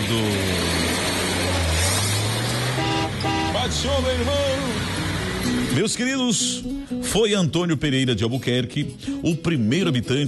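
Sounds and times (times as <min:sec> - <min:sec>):
Chevrolet Chevette car engine accelerating: 0:00.0 - 0:05.9
speech: 0:03.6 - 0:10.2.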